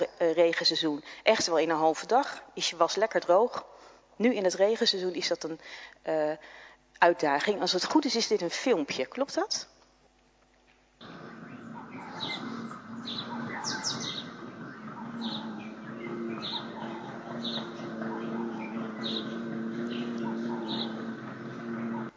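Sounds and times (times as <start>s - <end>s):
speech: 0.0s - 9.7s
birds chirping outdoors: 11.0s - 22.1s
steady low buzzing drone: 11.0s - 22.1s.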